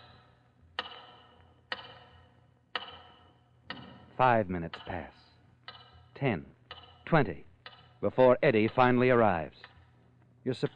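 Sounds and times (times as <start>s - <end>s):
low steady hum: 0.0s - 10.7s
tower clock ticking with heavy resonant knocks: 1.7s - 2.1s, 2.7s - 10.7s
speech: 4.2s - 5.2s, 6.2s - 9.7s, 10.4s - 10.7s.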